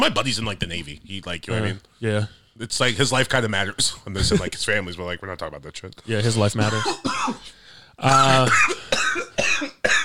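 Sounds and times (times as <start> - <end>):
speech: 0.0 - 8.8
rough breathy coughing fit: 6.6 - 10.0.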